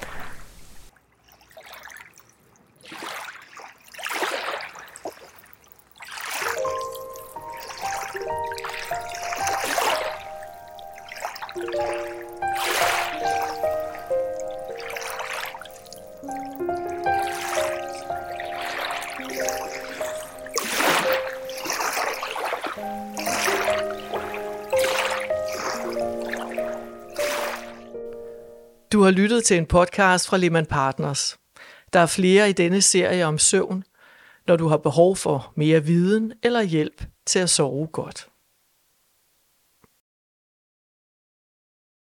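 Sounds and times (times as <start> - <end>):
water lapping and trickling with soft splashes: 0.0 - 28.9
calm sustained musical tones: 6.5 - 28.9
speech: 29.0 - 38.3.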